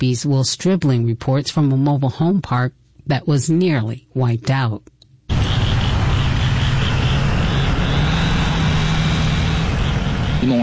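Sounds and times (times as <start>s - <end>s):
speech: 0.0s - 4.9s
truck engines at cleanup site: 5.3s - 10.6s.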